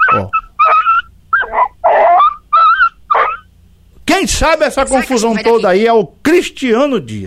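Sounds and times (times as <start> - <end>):
dog whimpering and yipping: 0.0 - 3.5
speech: 0.1 - 0.4, 4.1 - 7.2.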